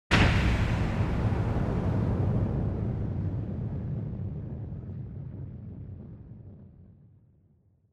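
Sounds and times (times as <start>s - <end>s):
long impact: 0.1s - 5.8s.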